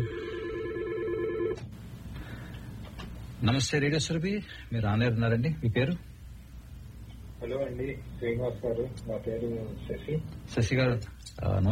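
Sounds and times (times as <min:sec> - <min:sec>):
telephone ringing with an incoming caller's call: 0:00.0 - 0:01.6
low quiet hum: 0:00.0 - 0:11.7
speech: 0:03.4 - 0:06.1, 0:07.4 - 0:11.7.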